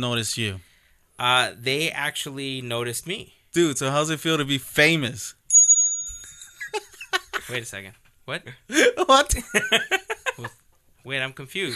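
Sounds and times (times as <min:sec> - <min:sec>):
speech: 0:00.0 - 0:05.4, 0:07.5 - 0:11.7
bell ringing: 0:05.5 - 0:06.9
laughter: 0:06.6 - 0:07.6, 0:08.8 - 0:10.5.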